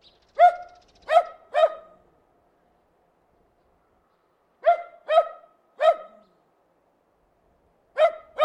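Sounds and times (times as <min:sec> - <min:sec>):
terrier giving sharp yappy barks: 0:00.4 - 0:02.0, 0:04.6 - 0:06.3, 0:08.0 - 0:08.4.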